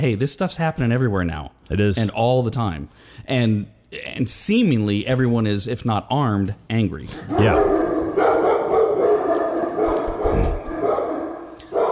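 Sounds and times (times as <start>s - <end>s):
speech: 0.0s - 7.8s
dogs barking: 7.1s - 11.9s.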